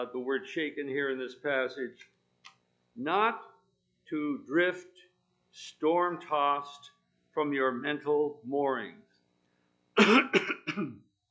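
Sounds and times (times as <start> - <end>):
speech: 0.0 - 2.2, 3.0 - 3.5, 4.1 - 9.0, 10.0 - 11.0
person with acid reflux coughing harshly: 10.0 - 11.1.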